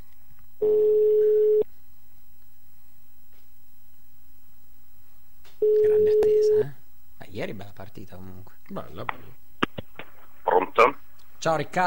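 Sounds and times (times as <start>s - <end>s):
ringback tone from a grey SIP telephone: 0.6s - 1.6s, 5.6s - 6.6s
speech: 7.5s - 9.4s, 10.8s - 11.8s.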